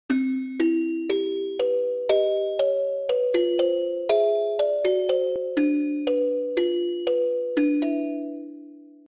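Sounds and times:
celesta: 0:00.1 - 0:09.1.

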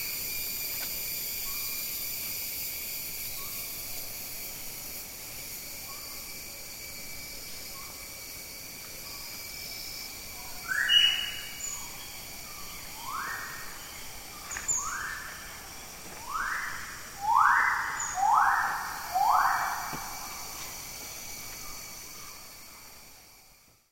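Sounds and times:
Magnificent riflebird calling: 0:10.6 - 0:20.5.

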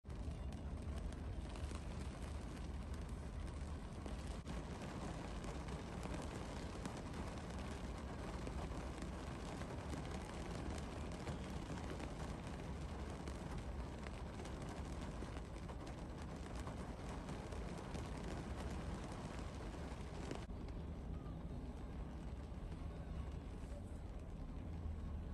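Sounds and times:
rain heard from inside a car: 0:00.0 - 0:25.3.

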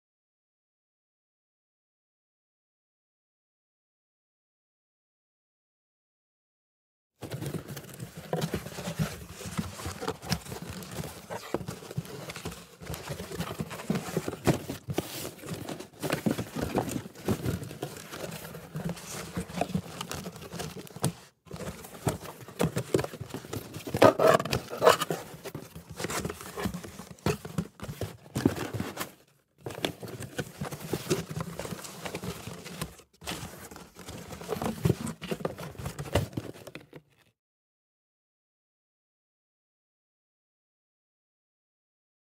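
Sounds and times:
cardboard box: 0:07.2 - 0:37.3.

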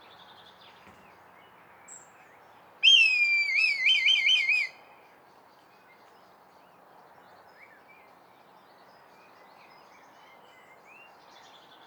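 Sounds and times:
red kite giving a wavering tremulous whistle: 0:02.8 - 0:04.7.

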